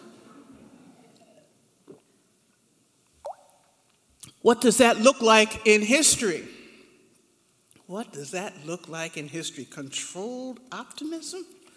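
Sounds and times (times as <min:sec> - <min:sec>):
faint hissing background: 0:00.0 - 0:11.7
person drinking water: 0:01.2 - 0:02.2
speech: 0:04.4 - 0:06.6, 0:07.9 - 0:11.6.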